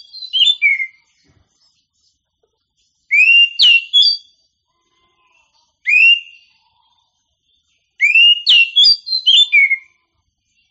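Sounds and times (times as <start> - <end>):
oriental magpie-robin singing: 0.0 - 2.0, 3.0 - 4.4, 5.8 - 6.6, 7.6 - 10.0.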